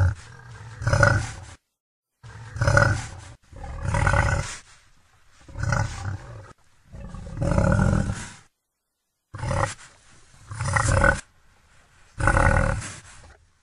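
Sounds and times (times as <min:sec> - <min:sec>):
wild boar giving deep gravelly grunts: 0:00.0 - 0:01.6, 0:02.2 - 0:04.6, 0:05.4 - 0:08.5, 0:09.3 - 0:11.3, 0:12.2 - 0:13.4.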